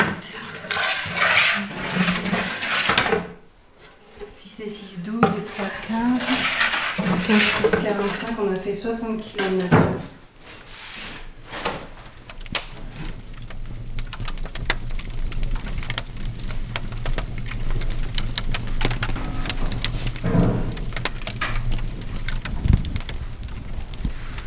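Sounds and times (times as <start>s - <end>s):
fresh-baked bread crackling as it cools: 0.2s - 3.1s, 4.7s - 24.4s.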